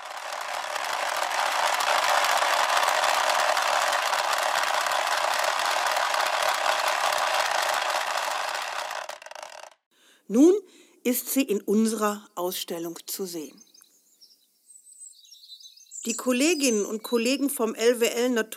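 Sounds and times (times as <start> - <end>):
wooden ratchet noisemaker being swung: 0.0 - 9.8
speech: 10.3 - 13.6, 16.1 - 18.5.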